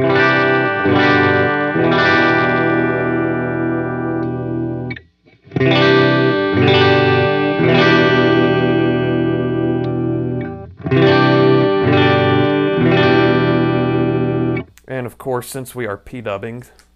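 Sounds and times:
clean electric guitar on the bridge pickup through an amp sim playing sustained chords: 0.0 - 14.7
speech: 15.4 - 16.9.

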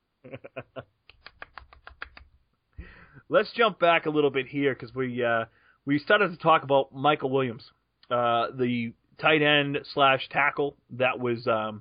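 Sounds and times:
speech: 0.2 - 0.7, 3.3 - 11.7
golf clap of soft slow handclaps: 1.0 - 2.4.

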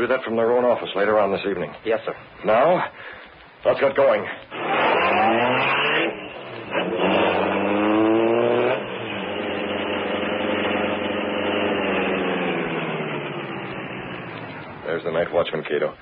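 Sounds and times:
speech: 0.0 - 7.0, 15.0 - 16.0
black car engine revving and driving off: 4.5 - 15.3.

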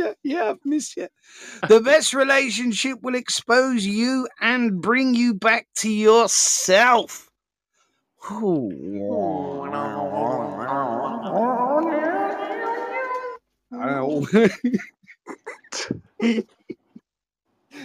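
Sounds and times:
speech: 0.1 - 7.3, 8.2 - 10.2, 13.8 - 15.0, 15.9 - 16.8
cat yowling as it is thrown: 9.0 - 13.4
laughter: 9.7 - 13.3, 14.2 - 17.0.

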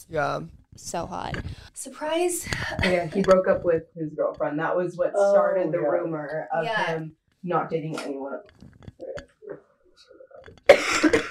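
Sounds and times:
speech: 0.0 - 9.2
person clearing throat: 10.7 - 11.2
person coughing: 10.7 - 11.2.

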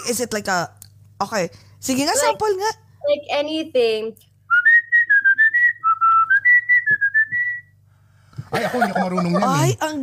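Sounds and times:
speech: 0.0 - 4.3, 8.5 - 10.0
faint low hum: 0.0 - 10.0
person whistling a lilting melody: 4.5 - 7.7
laughter: 8.4 - 9.8.

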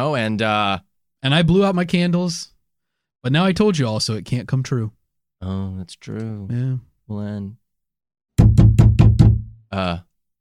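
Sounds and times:
speech: 0.0 - 2.5, 3.2 - 7.6, 9.7 - 10.1
loud knocks on a door: 8.4 - 9.6.

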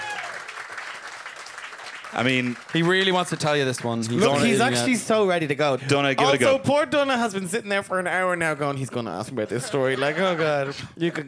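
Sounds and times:
live crowd applause: 0.0 - 4.8
speech: 2.1 - 11.2
laughter: 9.4 - 11.2.

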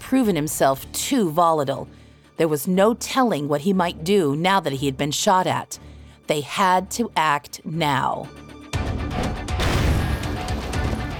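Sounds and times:
speech: 0.1 - 8.4
flashbang grenade exploding through broken glass: 9.2 - 11.0.

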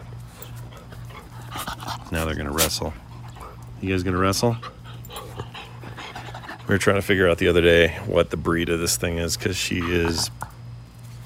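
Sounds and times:
low steady hum: 0.0 - 11.2
dog panting and whimpering: 0.2 - 7.3, 9.6 - 10.4
speech: 2.1 - 3.0, 3.8 - 4.7, 6.7 - 10.4.

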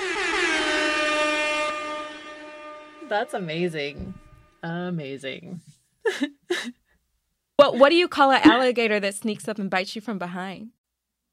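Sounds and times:
loud sustained air horn blast: 0.0 - 4.6
speech: 3.1 - 6.8, 7.6 - 10.8
laughter: 6.1 - 6.7.

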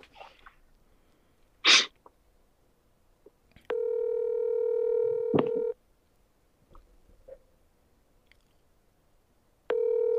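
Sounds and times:
outgoing phone call ringing tone: 3.7 - 5.8, 9.7 - 10.1.

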